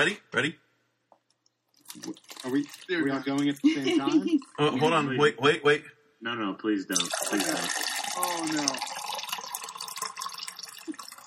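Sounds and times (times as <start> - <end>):
speech: 0.0 - 0.6, 2.0 - 9.0
urine stream splashing into a plastic bottle: 1.7 - 4.7, 6.9 - 11.2
laughter: 3.5 - 5.3.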